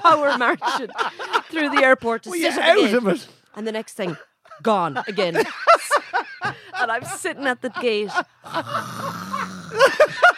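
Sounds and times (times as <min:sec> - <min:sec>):
speech: 0:00.0 - 0:05.9, 0:06.8 - 0:10.3
laughter: 0:00.0 - 0:10.3
voice mimicking snoring: 0:08.5 - 0:10.0.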